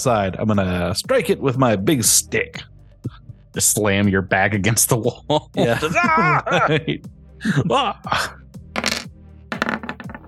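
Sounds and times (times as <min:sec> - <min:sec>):
speech: 0:00.0 - 0:08.4
laughter: 0:05.1 - 0:08.3
dice clattering across a hard tabletop: 0:08.8 - 0:10.2.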